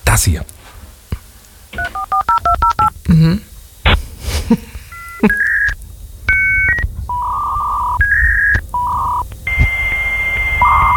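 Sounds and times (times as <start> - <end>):
speech: 0.1 - 0.5, 4.5 - 5.4
33.6k dial-up modem connecting with touch-tone dialing and handshake tones: 1.7 - 3.0, 4.9 - 10.9.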